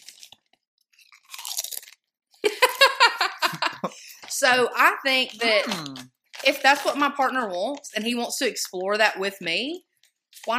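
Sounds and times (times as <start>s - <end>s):
crunching chips taken from a bag: 0.0s - 2.6s, 5.4s - 7.2s
laughter: 2.5s - 4.2s
speech: 4.4s - 10.5s.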